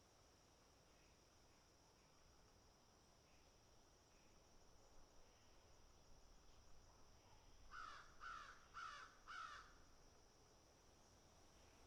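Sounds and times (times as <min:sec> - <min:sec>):
crow cawing harshly: 0:07.8 - 0:09.7.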